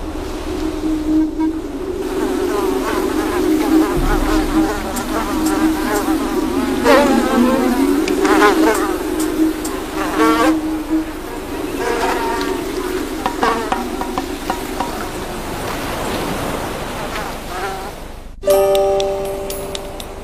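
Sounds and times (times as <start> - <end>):
faint chirping: 0.0 - 15.2
gentle water noise: 0.0 - 20.2
mosquitoes buzzing around mudskippers: 1.1 - 15.1.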